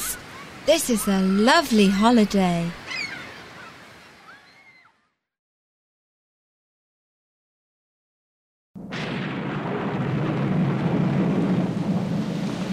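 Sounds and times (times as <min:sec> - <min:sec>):
heavy rain shower downpour: 0:00.0 - 0:03.0, 0:09.0 - 0:12.7
calls: 0:00.0 - 0:05.0
speech: 0:00.7 - 0:02.8
deep rolling thunder rumble: 0:08.8 - 0:12.7.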